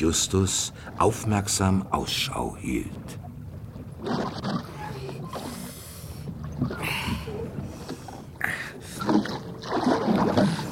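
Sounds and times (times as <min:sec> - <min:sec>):
speech: 0:00.0 - 0:03.2
oars rowing a boat through water: 0:00.0 - 0:10.6
creaking oar strokes: 0:03.8 - 0:10.6.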